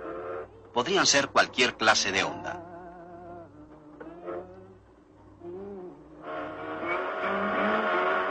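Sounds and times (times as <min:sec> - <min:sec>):
louder rough engine roar: 0:00.0 - 0:08.2
speech: 0:00.8 - 0:02.7
vehicle engine whining past with Doppler pitch shift: 0:01.9 - 0:08.2.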